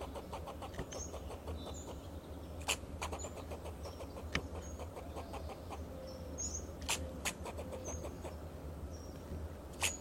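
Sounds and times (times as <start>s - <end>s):
fox squirrel rapid clicking notes: 0.0s - 1.9s, 2.6s - 5.8s, 6.8s - 8.2s
fox squirrel loud abrupt chucks: 0.0s - 5.9s, 6.8s - 8.4s, 9.7s - 9.9s
short bird chirps: 0.0s - 9.9s.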